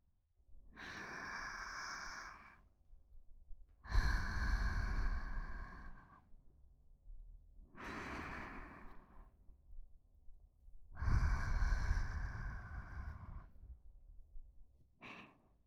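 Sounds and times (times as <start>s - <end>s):
slow deep breathing in through the nose and out through the mouth: 0.8s - 2.6s, 3.8s - 6.4s, 7.7s - 9.4s, 10.8s - 14.0s, 15.0s - 15.6s.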